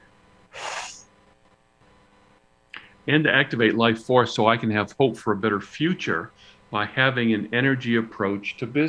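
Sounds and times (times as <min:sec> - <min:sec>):
quick audible intake of breath: 0:00.5 - 0:01.1
speech: 0:03.1 - 0:08.8.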